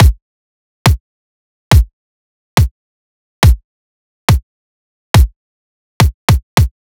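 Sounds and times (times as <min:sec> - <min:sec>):
kick drum loop: 0:00.0 - 0:00.2, 0:01.7 - 0:01.9, 0:03.4 - 0:03.6, 0:05.2 - 0:05.4, 0:06.0 - 0:06.8.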